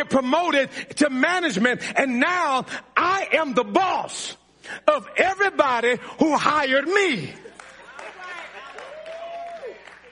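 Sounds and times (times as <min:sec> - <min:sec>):
speech: 0:00.0 - 0:07.4
scattered audience applause: 0:07.4 - 0:10.1.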